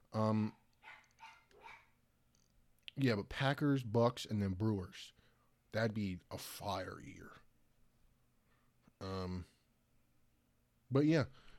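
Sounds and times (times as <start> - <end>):
speech: 0.1 - 0.6, 3.0 - 7.4, 9.0 - 9.5, 10.9 - 11.5
dog barking: 0.8 - 2.0.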